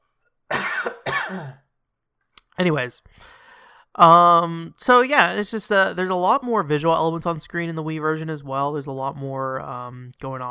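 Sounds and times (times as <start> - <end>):
loud harsh coughs: 0.5 - 1.7
speech: 2.6 - 3.4, 4.0 - 10.4.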